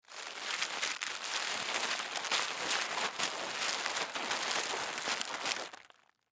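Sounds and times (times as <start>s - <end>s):
plastic bubble wrap handling: 0.0s - 6.1s.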